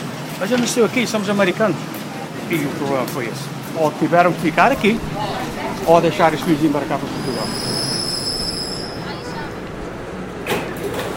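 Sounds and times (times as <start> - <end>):
speech: 0.4 - 7.9
train bound for World Trade Center running on rails: 1.8 - 11.1
thin high train wheel squeal: 4.3 - 11.1.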